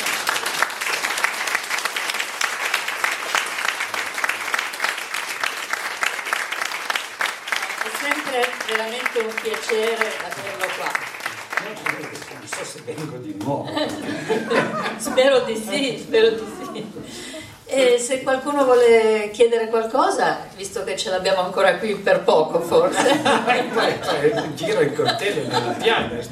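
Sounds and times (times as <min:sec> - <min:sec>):
audience applause: 0:00.0 - 0:14.8
speech: 0:08.6 - 0:26.3
laughter: 0:13.1 - 0:17.4, 0:22.7 - 0:26.3.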